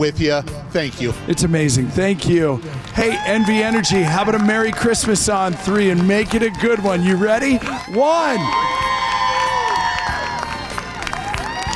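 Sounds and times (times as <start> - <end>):
speech: 0.0 - 8.9
large crowd cheering and shouting: 2.9 - 11.7
sharp whoops: 3.1 - 4.1, 7.6 - 11.7.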